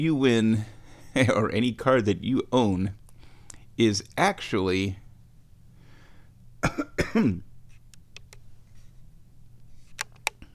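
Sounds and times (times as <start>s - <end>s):
speech: 0.0s - 3.0s, 3.8s - 5.0s, 6.6s - 7.5s
person coughing while briefly choking: 6.6s - 7.5s.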